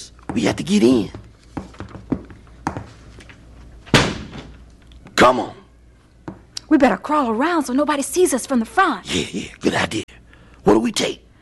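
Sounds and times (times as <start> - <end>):
speech: 0.3 - 1.2, 5.3 - 5.6, 6.7 - 10.1, 10.7 - 11.2
restaurant's side door banging as it is forced open: 3.9 - 4.6.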